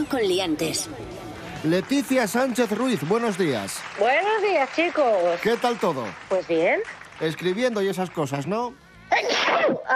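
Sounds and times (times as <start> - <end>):
speech: 0.0 - 9.9
person sneezing: 9.1 - 9.9.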